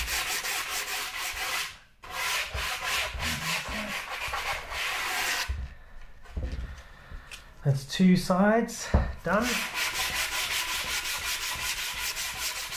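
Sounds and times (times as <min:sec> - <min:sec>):
sandpaper rubbed by hand along an edge: 0:00.0 - 0:05.5, 0:09.4 - 0:12.7
speech: 0:07.6 - 0:09.8.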